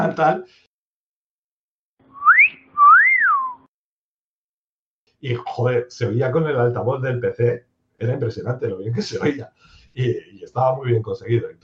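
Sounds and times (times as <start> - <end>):
laughter: 0.0 - 0.4
speech: 0.0 - 0.6, 5.2 - 11.6
loud wolf whistle by a man: 2.1 - 3.7.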